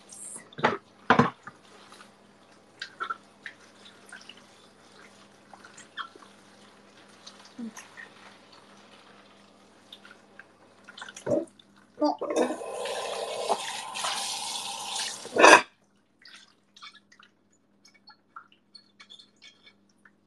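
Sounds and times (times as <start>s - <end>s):
water dripping in a sink: 0.0s - 12.0s, 12.9s - 20.2s
dishes clattering: 15.2s - 15.7s.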